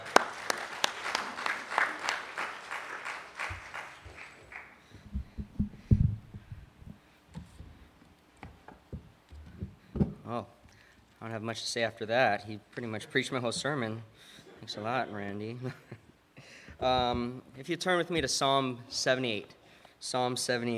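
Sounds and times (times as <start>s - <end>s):
audience applause in a large room: 0.0s - 4.8s
soft low thuds: 5.0s - 7.0s, 16.8s - 17.4s
speech: 10.3s - 10.6s, 11.3s - 15.9s, 16.8s - 20.7s.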